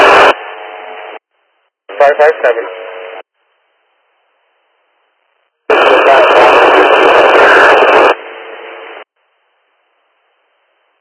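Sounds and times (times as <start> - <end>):
radio transmission with heavy static: 0.0 - 0.4, 1.9 - 3.2, 5.7 - 9.1
speech: 2.0 - 2.8.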